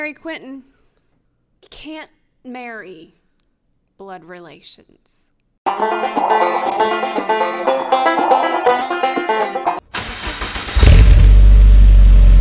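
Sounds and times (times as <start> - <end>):
speech: 0.0 - 0.7, 1.6 - 3.2, 4.0 - 7.7
music: 5.7 - 9.8
car engine starting and revving: 9.9 - 12.3.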